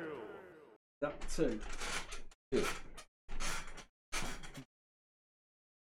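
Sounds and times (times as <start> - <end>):
speech: 1.0 - 1.9, 2.5 - 2.9
old chair squeaking and creaking: 1.7 - 4.6.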